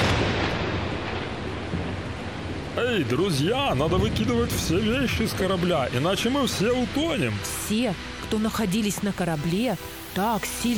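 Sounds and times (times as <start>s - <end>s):
violent storm at sea with roaring wind and water: 0.0s - 8.3s
speech: 2.8s - 10.7s.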